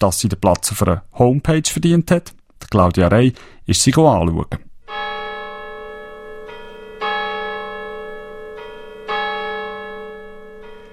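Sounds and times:
speech: 0:00.0 - 0:04.7
church bells ringing: 0:04.9 - 0:10.9.

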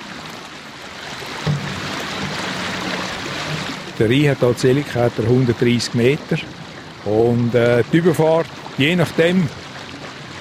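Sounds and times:
river water flowing past a cable ferry: 0:00.0 - 0:10.3
low thump: 0:01.4 - 0:03.8
speech: 0:04.0 - 0:09.6.

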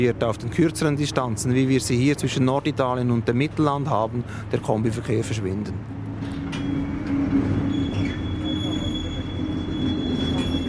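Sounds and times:
speech: 0:00.0 - 0:06.3
heavy fully loaded freight train rumbling as it starts to move: 0:00.0 - 0:10.6
faint metallic squeals from freight train wheels: 0:06.4 - 0:10.6.

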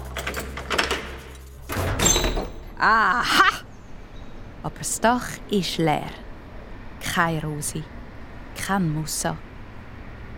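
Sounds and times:
heavy iron door scraping as it is pushed open: 0:00.2 - 0:02.7
speech: 0:02.8 - 0:03.6, 0:04.6 - 0:06.2, 0:07.1 - 0:08.0, 0:08.6 - 0:09.5.

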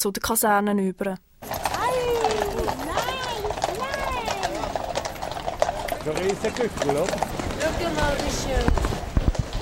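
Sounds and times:
speech: 0:00.0 - 0:01.7, 0:06.0 - 0:08.9
harnessed horses clip-clopping through a city street: 0:01.4 - 0:09.5
dense overlapping voices: 0:01.8 - 0:04.9.

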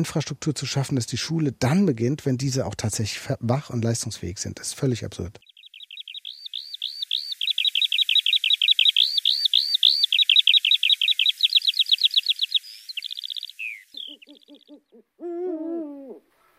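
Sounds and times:
speech: 0:00.0 - 0:05.5
lark singing: 0:05.4 - 0:15.0.

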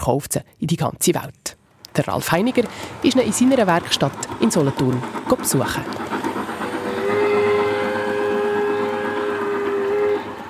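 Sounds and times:
speech: 0:00.0 - 0:06.2
large gauge 1 garden model train running in Bellach Solothurn Switzerland: 0:01.6 - 0:10.4
model train whistle: 0:06.4 - 0:10.4.

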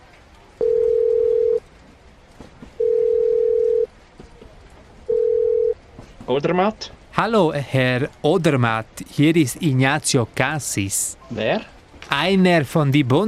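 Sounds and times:
telephone tone beeps while a call is placed: 0:00.6 - 0:01.6, 0:02.8 - 0:03.9, 0:05.1 - 0:05.8
speech: 0:06.3 - 0:13.2.

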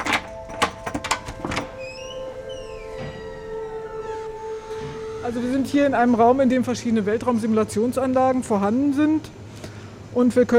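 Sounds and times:
door lock clicks and clunks as a door is unlocked: 0:00.0 - 0:03.4
door creaking open: 0:00.0 - 0:05.3
steady low mechanical hum: 0:00.0 - 0:10.5
speech: 0:05.3 - 0:09.4, 0:10.1 - 0:10.5.

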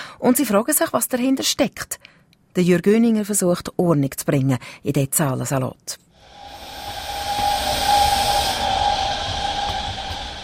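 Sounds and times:
speech: 0:00.2 - 0:06.1
train pulling into a station with hissing rumble: 0:06.2 - 0:10.4.

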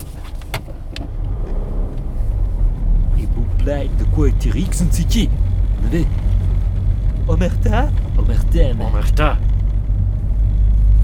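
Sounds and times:
car engine rumbling: 0:00.0 - 0:11.0
speech: 0:03.7 - 0:06.2, 0:07.3 - 0:09.5.

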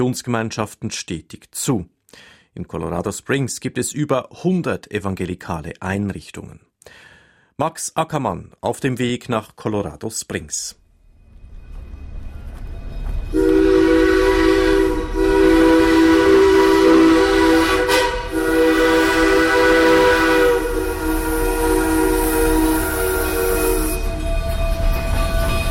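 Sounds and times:
speech: 0:00.0 - 0:10.8
narrow-gauge steam train whistle: 0:13.3 - 0:25.6.

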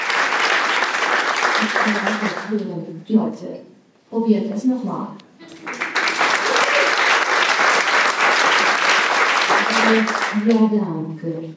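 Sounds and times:
audience clapping hands: 0:00.0 - 0:02.6, 0:05.5 - 0:10.7
speech: 0:01.6 - 0:05.8, 0:09.8 - 0:11.5.

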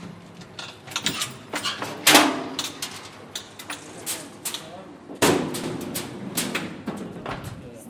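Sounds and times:
heavy metal hoist door slamming: 0:00.9 - 0:02.8, 0:05.2 - 0:07.6.

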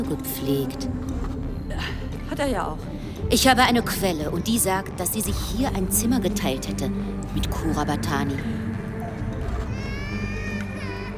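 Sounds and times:
speech: 0:00.0 - 0:08.6
constant low rumbling background: 0:00.0 - 0:11.1
baby crying: 0:09.5 - 0:11.1.

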